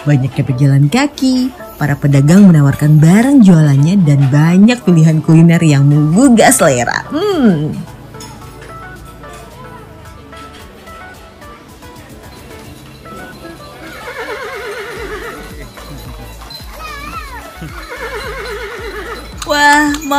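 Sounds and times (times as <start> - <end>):
speech: 0.0 - 7.9
street noise at night: 0.0 - 20.1
delman carriage horse neighing: 13.8 - 16.1, 17.5 - 19.4.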